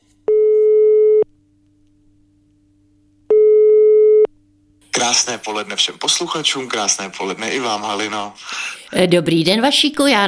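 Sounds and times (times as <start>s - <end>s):
faint low hum: 0.0s - 10.2s
telephone ringing tone as a call is placed: 0.3s - 1.2s, 3.3s - 4.3s
speech: 5.0s - 10.2s.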